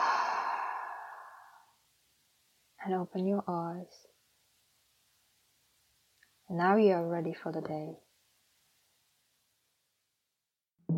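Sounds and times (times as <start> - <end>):
deep breath exhaled through the mouth during a calm breathing exercise: 0.0 - 1.7
speech: 2.8 - 4.1, 6.5 - 8.0.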